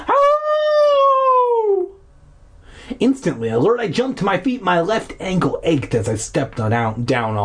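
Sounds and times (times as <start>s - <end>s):
distant mournful howl: 0.0s - 2.0s
speech: 3.0s - 7.4s.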